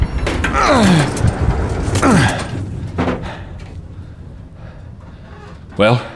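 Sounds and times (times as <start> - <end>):
stuck door forced open creaking: 0.0 - 6.1
strained breathing: 0.6 - 6.1
speech: 5.8 - 6.1.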